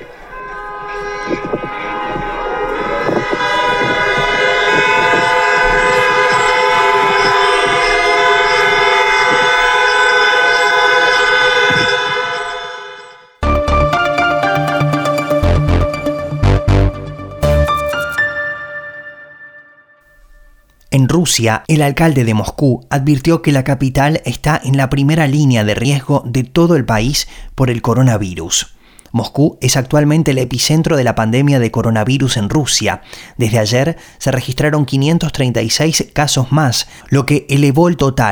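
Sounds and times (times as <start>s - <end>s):
alarm horns blaring in national mourning tribute: 0.0s - 20.8s
speech: 21.2s - 38.3s.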